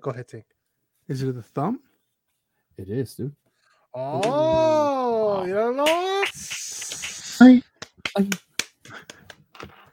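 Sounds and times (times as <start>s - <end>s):
speech: 0.0s - 1.9s, 2.8s - 6.6s, 7.4s - 9.0s
loud sharp hand clap: 5.8s - 9.8s.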